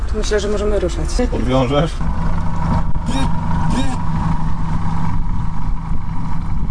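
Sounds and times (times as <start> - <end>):
speech: 0.1 - 2.2
motorboat engine on a river revving and accelerating: 2.0 - 6.6.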